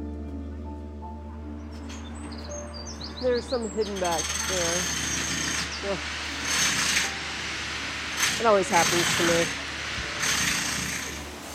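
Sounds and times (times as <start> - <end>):
speech: 3.2 - 5.1, 5.8 - 6.2, 8.4 - 9.6
power tool droning outdoors at a Quaker meeting house in Berkhamsted: 3.2 - 11.5.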